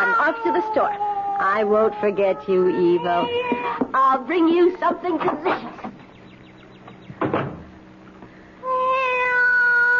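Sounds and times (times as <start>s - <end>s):
cat meowing: 0.0s - 3.8s, 8.6s - 9.9s
speech: 0.0s - 5.9s.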